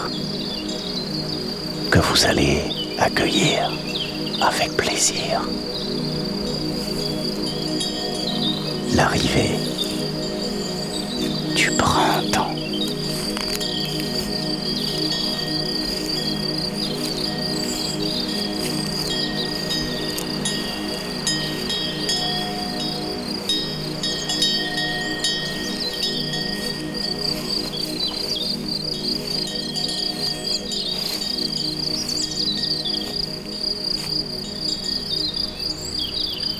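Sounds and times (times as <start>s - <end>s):
chorus of many crickets chirping: 0.0s - 36.5s
faint distant birdsong: 0.0s - 36.5s
speech: 1.9s - 3.8s, 4.4s - 6.1s, 8.9s - 9.7s.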